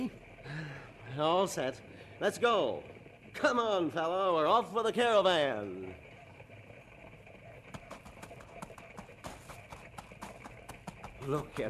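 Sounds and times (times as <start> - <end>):
continuous noisy background: 0.0 - 11.6
speech: 1.2 - 6.1, 11.2 - 11.6
packed mule's hooves clip-clopping at a walk: 2.4 - 11.6.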